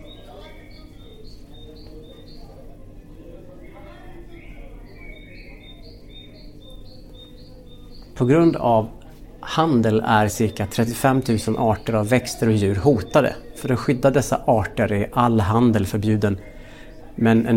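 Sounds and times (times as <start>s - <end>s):
birds chirping: 0.0s - 17.5s
hum: 0.0s - 17.5s
market crowd murmur in an exhibition installation: 0.0s - 17.5s
speech: 8.2s - 9.0s, 9.6s - 16.5s, 17.2s - 17.5s.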